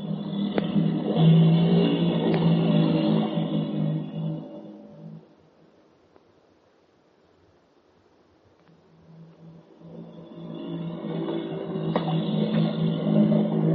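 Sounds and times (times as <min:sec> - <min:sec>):
motorboat engine droning: 0:00.0 - 0:05.5, 0:08.9 - 0:13.7.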